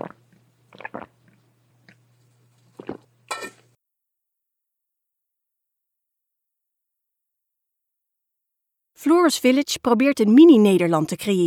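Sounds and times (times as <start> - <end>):
person sipping and swallowing water: 0.0 - 3.2
faint steady hum: 0.0 - 3.8
speech: 9.0 - 11.4.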